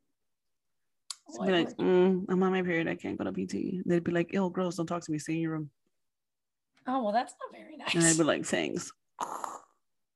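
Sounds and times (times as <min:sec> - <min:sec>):
speech: 0:01.3 - 0:05.8, 0:06.9 - 0:09.5
person imitating snoring: 0:09.2 - 0:09.8.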